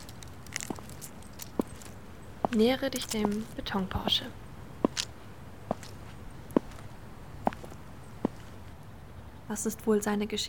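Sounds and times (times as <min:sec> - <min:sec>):
footsteps walking to parking garage: 0:00.0 - 0:04.1, 0:04.8 - 0:08.6
speech: 0:02.5 - 0:04.4, 0:09.5 - 0:10.4.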